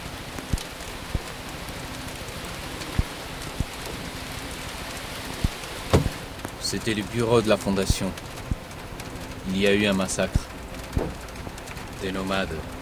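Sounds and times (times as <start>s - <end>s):
heavy rain pouring by a roadside outside a village: 0.0s - 12.8s
sharp louder raindrops or knocks: 5.9s - 6.3s
speech: 6.7s - 8.4s, 9.5s - 10.5s, 12.0s - 12.8s.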